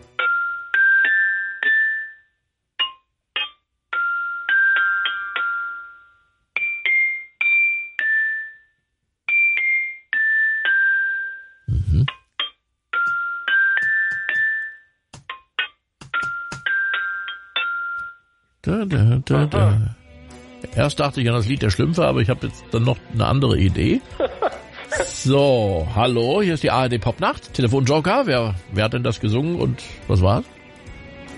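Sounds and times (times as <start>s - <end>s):
glockenspiel melody: 0.0s - 19.9s
speech: 18.8s - 20.0s, 20.6s - 24.2s, 25.0s - 30.5s.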